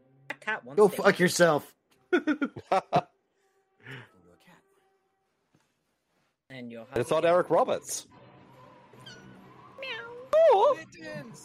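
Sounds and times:
speech: 0.4 - 3.1, 6.5 - 8.2, 10.5 - 11.4
laughter: 2.1 - 3.1
upset cat meowing and yowling: 9.0 - 10.5.

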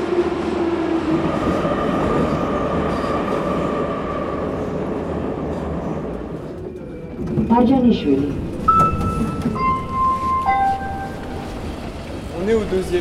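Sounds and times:
metro train arriving, wheels rumbling on rails: 0.0 - 12.9
speech: 7.6 - 8.4, 12.5 - 12.9.

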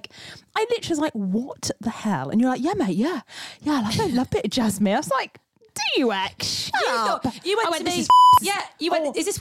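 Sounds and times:
speech: 0.3 - 9.3
censor beep over a spoken name: 8.1 - 8.4.

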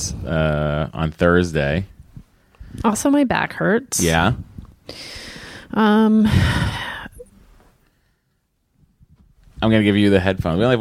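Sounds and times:
speech: 0.2 - 1.9, 2.7 - 6.9, 9.6 - 10.7
heavy breathing into the microphone: 4.9 - 7.3.

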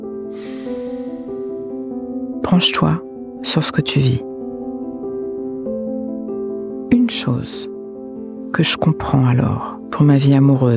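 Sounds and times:
long airy breath out: 0.3 - 1.7
speech: 2.5 - 4.3, 7.1 - 7.7, 8.6 - 10.7.

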